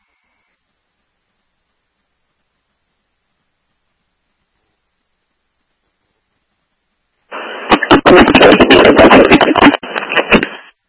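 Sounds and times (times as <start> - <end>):
harsh crackling radio static with sharp pops: 7.2 - 10.8.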